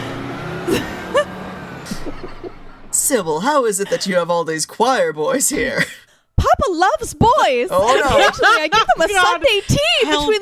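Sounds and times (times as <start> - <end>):
large bus engine hum: 0.0 - 4.5, 7.7 - 10.4
laughter: 0.7 - 2.9, 7.7 - 10.4
speech: 3.1 - 10.4.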